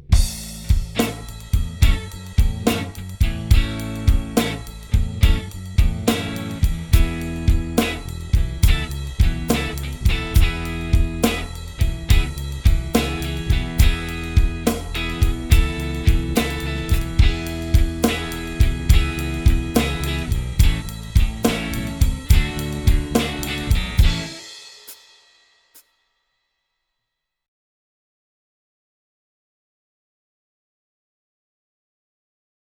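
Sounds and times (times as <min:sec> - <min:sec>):
solo backing music: 0:00.2 - 0:25.0.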